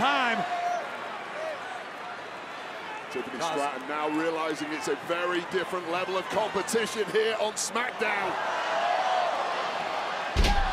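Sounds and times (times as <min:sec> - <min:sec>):
crowd noise at a wrestling show: 0:00.0 - 0:10.7
speech: 0:03.1 - 0:08.6
wrestler slammed onto the ring by a powerbomb: 0:10.4 - 0:10.7.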